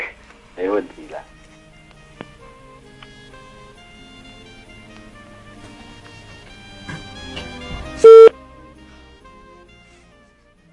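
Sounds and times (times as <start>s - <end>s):
speech: 0.6s - 1.4s
telephone being dialed with faint tones: 8.0s - 8.3s.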